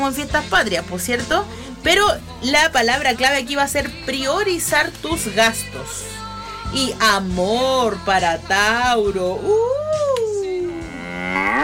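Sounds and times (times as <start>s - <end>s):
speech: 0.0s - 6.1s, 6.7s - 9.8s, 11.3s - 11.6s
cow mooing: 10.7s - 11.6s.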